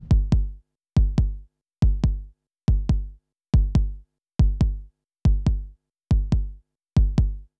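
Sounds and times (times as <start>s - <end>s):
processed kick drum: 0.0s - 7.5s.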